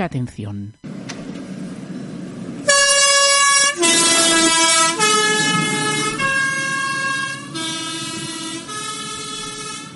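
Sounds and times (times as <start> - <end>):
speech: 0.0 - 0.8
faint outdoor rumble: 0.9 - 9.9
postbus horn playing melodic sequence as the bus departs: 2.6 - 9.9.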